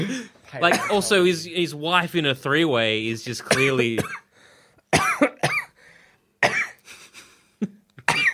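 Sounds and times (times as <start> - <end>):
person coughing: 0.0 - 1.1, 3.4 - 4.2, 4.9 - 5.7, 6.4 - 6.8, 8.0 - 8.3
speech: 0.0 - 4.2.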